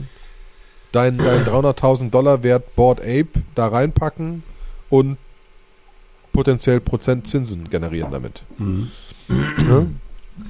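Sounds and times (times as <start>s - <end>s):
speech: 0.9s - 5.2s, 6.4s - 10.4s
throat clearing: 1.2s - 1.6s, 8.6s - 10.0s.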